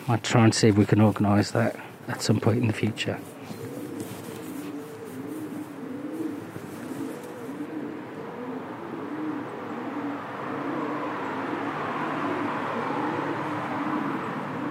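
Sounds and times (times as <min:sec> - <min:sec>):
steady rumble and hiss: 0:00.0 - 0:09.3
many pigeons cooing under a bridge in Leicester: 0:00.0 - 0:14.6
speech: 0:00.1 - 0:03.4.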